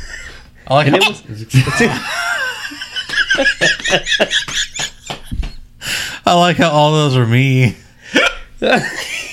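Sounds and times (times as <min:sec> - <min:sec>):
speech: 0:00.7 - 0:02.2, 0:03.4 - 0:04.8, 0:06.3 - 0:09.2
hiccuping laugh with squeaky high-pitched notes: 0:08.1 - 0:08.8.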